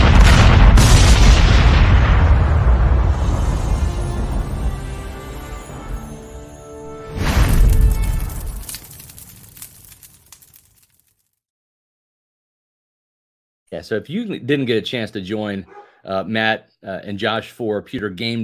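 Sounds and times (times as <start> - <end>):
heavy cannon blast: 0.0 - 4.9, 7.0 - 8.8
speech: 13.8 - 18.4.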